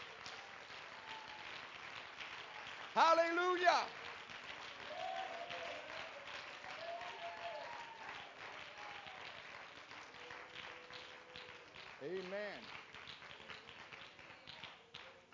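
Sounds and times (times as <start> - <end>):
crowd clapping in a large room: 0.0 - 15.3
loud voice calling out: 3.0 - 3.9
speech: 3.0 - 4.0, 12.0 - 12.8.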